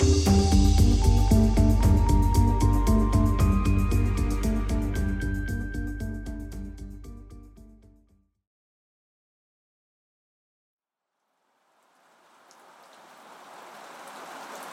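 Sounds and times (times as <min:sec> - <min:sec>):
tonal music: 0:00.0 - 0:07.3
steady rain falling: 0:11.4 - 0:14.7.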